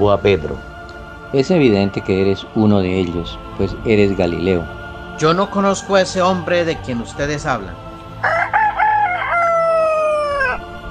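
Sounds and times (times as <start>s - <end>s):
speech: 0.0s - 0.7s, 1.3s - 8.3s
rooster crowing: 8.1s - 10.8s.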